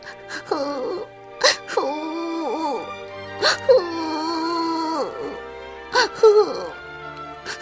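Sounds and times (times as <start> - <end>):
person imitating a child crying in a children's story: 0.4 - 5.4, 6.0 - 6.7.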